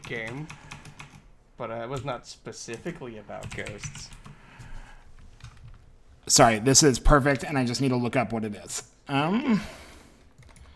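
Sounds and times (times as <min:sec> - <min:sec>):
computer keyboard typing: 0:00.0 - 0:01.3, 0:01.9 - 0:04.4, 0:05.2 - 0:05.8, 0:10.4 - 0:10.7
low hum: 0:00.0 - 0:10.7
speech: 0:00.1 - 0:00.6, 0:01.6 - 0:04.2, 0:06.3 - 0:09.8.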